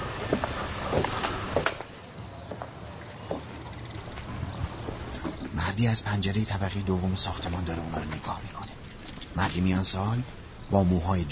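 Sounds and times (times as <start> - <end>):
hum: 0.0 - 11.3
man's footsteps on a hard surface by a swimming pool building parking area: 0.2 - 1.9, 2.5 - 5.5
speech: 5.8 - 8.7, 9.4 - 11.3.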